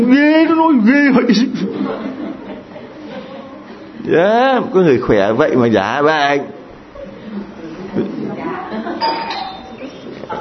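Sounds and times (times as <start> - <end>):
speech: 0.8 - 2.5, 4.1 - 6.6
people laughing: 1.3 - 3.9, 6.9 - 10.3
doorbell chiming: 9.0 - 9.8.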